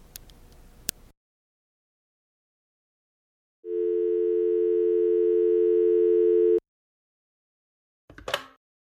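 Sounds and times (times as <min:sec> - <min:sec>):
steady telephone tone after a phone call ends: 0:03.6 - 0:06.6.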